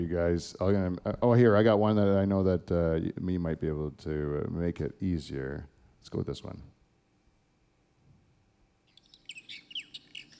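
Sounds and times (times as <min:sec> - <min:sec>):
speech: 0:00.0 - 0:06.7
birds chirping: 0:08.8 - 0:10.3.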